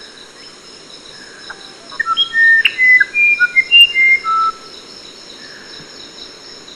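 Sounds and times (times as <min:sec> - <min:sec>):
continuous buzzing insect background: 0:00.0 - 0:06.7
Musician Wren whistled song: 0:01.4 - 0:04.7.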